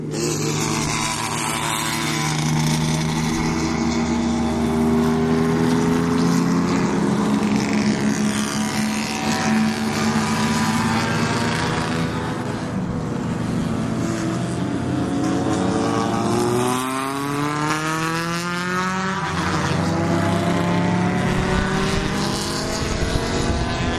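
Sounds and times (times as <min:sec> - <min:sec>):
field of race cars circling behind a pace car: 0:00.0 - 0:23.9.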